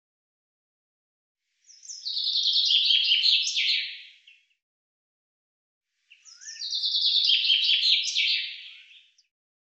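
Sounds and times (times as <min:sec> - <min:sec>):
common chaffinch singing: 0:01.7 - 0:04.6, 0:06.1 - 0:09.3.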